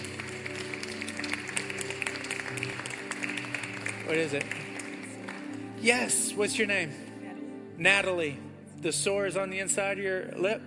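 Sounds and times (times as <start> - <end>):
crowd clapping hands: 0.0 - 5.9
speech: 4.1 - 4.6, 5.8 - 7.0, 7.8 - 10.6.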